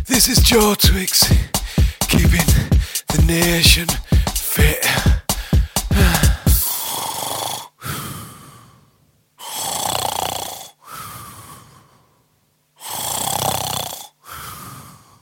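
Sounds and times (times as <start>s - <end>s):
speech: 0.2s - 5.2s
loud snoring: 6.6s - 8.1s, 9.4s - 11.8s, 12.8s - 15.0s.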